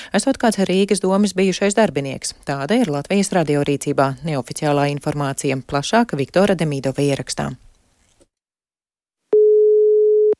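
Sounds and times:
speech: 0:00.1 - 0:07.7
ringing tone of a call to a mobile phone: 0:09.3 - 0:10.3.

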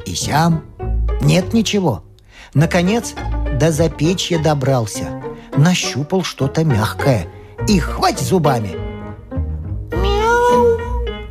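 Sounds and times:
speech: 0:00.1 - 0:08.8
kitten meowing: 0:09.9 - 0:11.1.

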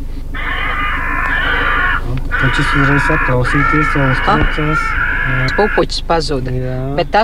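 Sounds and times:
steady low hum: 0:00.0 - 0:07.2
recorded crow distress call played through a computer speaker to drive birds away: 0:00.4 - 0:05.9
speech: 0:02.5 - 0:07.2.

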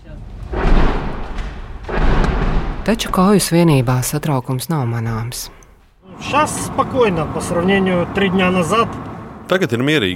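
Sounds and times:
heavy gunfire booms near a front line: 0:00.5 - 0:03.6
speech: 0:02.9 - 0:05.6, 0:06.2 - 0:10.1.

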